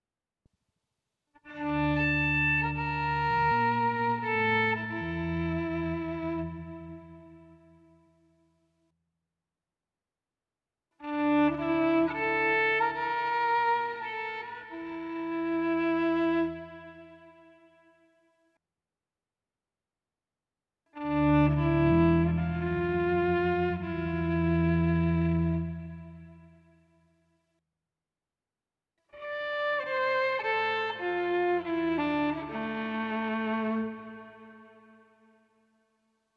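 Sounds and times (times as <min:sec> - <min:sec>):
instrumental music soundscape: 0:01.5 - 0:08.0, 0:11.0 - 0:18.0, 0:21.0 - 0:26.8, 0:29.2 - 0:35.3.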